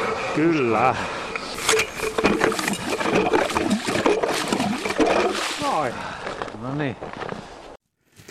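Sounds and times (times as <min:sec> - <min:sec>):
speech: 0:00.4 - 0:01.2, 0:05.6 - 0:07.3
water gurgling through a drilled hole in 40 cm lake ice as ice auger is lifted: 0:01.6 - 0:05.9.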